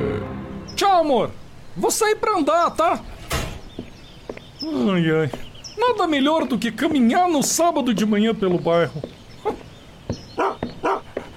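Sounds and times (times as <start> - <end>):
speech: 0.8 - 3.2, 4.6 - 9.6
stray dog barking: 9.4 - 9.7, 10.4 - 11.2.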